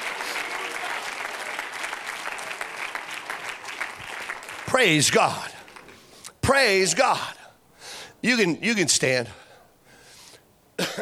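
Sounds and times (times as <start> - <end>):
crowd applauding: 0.0 - 6.0
speech: 4.8 - 5.5, 6.5 - 7.4, 8.2 - 9.4.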